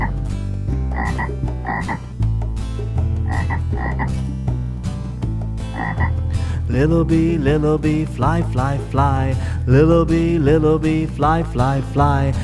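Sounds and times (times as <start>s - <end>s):
frog croaking: 0.0s - 4.4s, 5.7s - 7.0s
bouncy children's song with music: 0.0s - 12.4s
speech: 6.7s - 12.4s.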